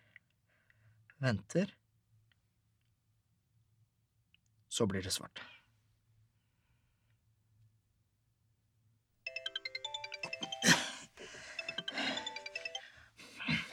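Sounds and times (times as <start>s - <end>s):
speech: 1.2s - 1.8s, 4.8s - 5.5s
phone ringing with a bright melodic ringtone: 9.3s - 13.1s.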